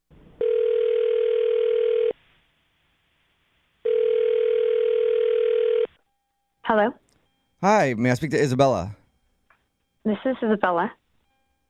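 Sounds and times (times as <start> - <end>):
steady telephone ringback tone: 0.4 - 2.1, 3.9 - 5.9
speech: 6.7 - 7.0, 7.6 - 9.0, 10.1 - 11.0.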